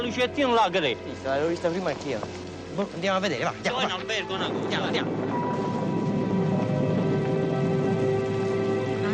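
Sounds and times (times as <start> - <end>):
speech: 0.0 - 5.7
rain falling: 0.0 - 9.1
low hum: 3.9 - 9.1.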